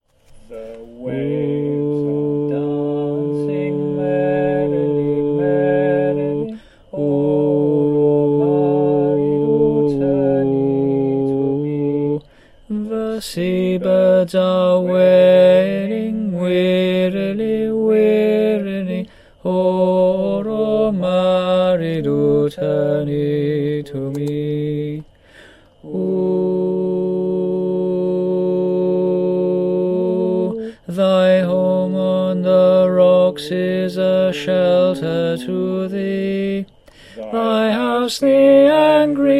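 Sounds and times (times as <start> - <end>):
alto voice singing: 0.5 - 39.3.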